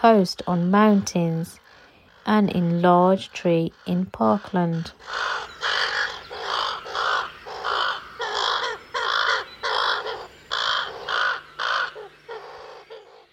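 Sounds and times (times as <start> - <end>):
speech: 0.0 - 1.6, 2.3 - 5.5
ravens cawing: 4.8 - 13.3.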